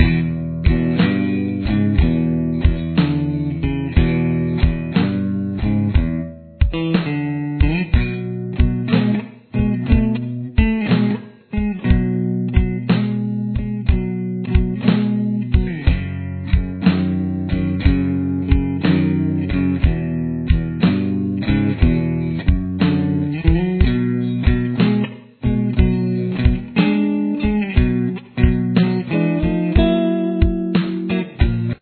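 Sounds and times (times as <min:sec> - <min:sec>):
rhythm guitar: 0:00.0 - 0:31.8.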